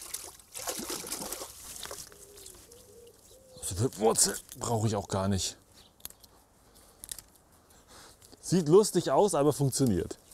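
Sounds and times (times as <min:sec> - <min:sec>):
water trickling and splashing while rinsing plant roots: 0:00.0 - 0:02.2
speech: 0:03.8 - 0:05.6, 0:08.5 - 0:10.2.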